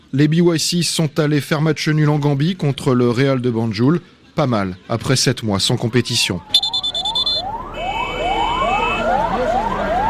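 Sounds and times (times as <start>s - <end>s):
speech: 0.1s - 6.8s
ambulance siren wailing with rapid rising sweeps: 5.8s - 10.0s
steady high electronic tone: 6.5s - 9.0s.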